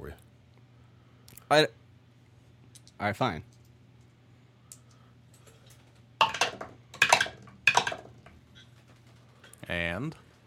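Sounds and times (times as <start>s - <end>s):
speech: 1.5s - 1.8s, 3.0s - 3.5s, 9.7s - 10.2s
three ten-sided dice rattling across a hard surface: 6.2s - 8.1s.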